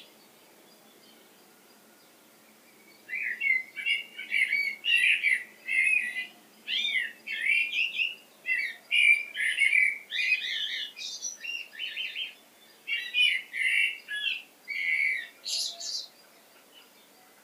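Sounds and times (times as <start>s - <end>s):
Common blackbird Turdus merula chattering and warbling: 3.1s - 17.0s.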